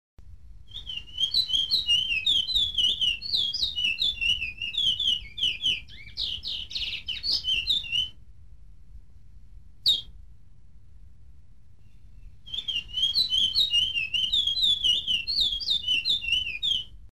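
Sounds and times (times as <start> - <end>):
Picolet Pijepije songbird singing in Suriname: 0.7 - 8.2, 9.8 - 10.2, 11.8 - 17.0.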